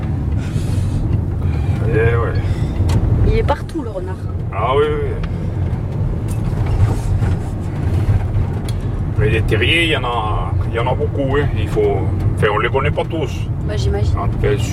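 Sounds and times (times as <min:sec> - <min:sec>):
steady low road rumble inside a moving car: 0:00.0 - 0:14.7
people chatting casually in a moving car: 0:01.8 - 0:02.4, 0:03.2 - 0:05.2, 0:09.2 - 0:14.7
speech: 0:09.3 - 0:14.7.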